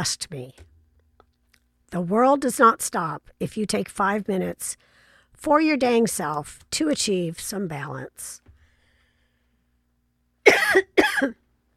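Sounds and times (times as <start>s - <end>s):
speech: 0.0s - 0.7s, 1.9s - 8.4s, 10.5s - 11.4s
person coughing: 10.5s - 11.4s.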